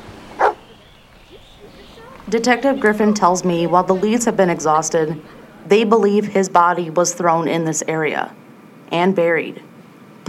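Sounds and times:
cadaver dog barking: 0.4s - 2.3s
laughter: 0.6s - 6.5s
speech: 2.3s - 10.2s.

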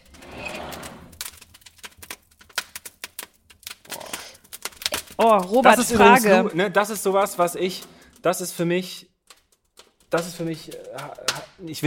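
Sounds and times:
crackling fire in a fireplace: 0.0s - 11.8s
speech: 5.2s - 9.1s, 10.1s - 11.8s.

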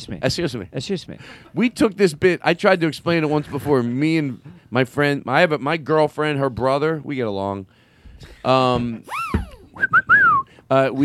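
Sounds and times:
speech: 0.0s - 10.1s, 10.7s - 11.0s
slide whistle: 9.1s - 10.5s.

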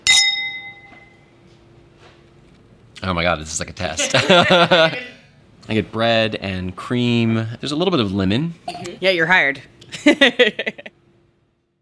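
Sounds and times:
glasses clinking together in a toast: 0.0s - 1.3s
speech: 3.0s - 10.9s
laughter: 4.0s - 5.3s, 9.9s - 10.9s.

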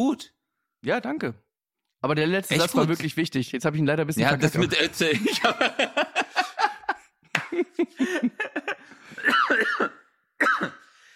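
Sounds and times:
speech: 0.0s - 1.4s, 2.0s - 6.2s, 7.5s - 10.7s
laughter: 4.5s - 9.6s
person cough-sneezing: 9.2s - 10.9s.

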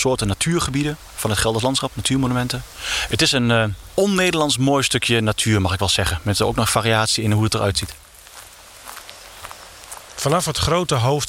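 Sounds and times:
speech: 0.0s - 8.1s, 10.2s - 11.2s
faint outdoor hiss: 0.0s - 11.2s
footsteps crunching along a woodland path over leaves and dirt: 7.2s - 11.2s.

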